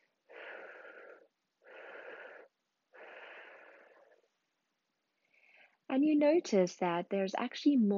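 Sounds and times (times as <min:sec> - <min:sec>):
long breathy exhalations: 0:00.3 - 0:04.1
speech: 0:06.0 - 0:07.9.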